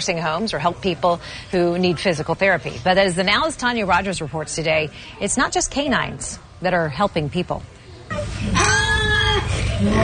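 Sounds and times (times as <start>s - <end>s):
speech: 0.0s - 7.8s, 9.4s - 10.0s
pot-bellied pig squealing at an assisted living facility: 8.1s - 10.0s.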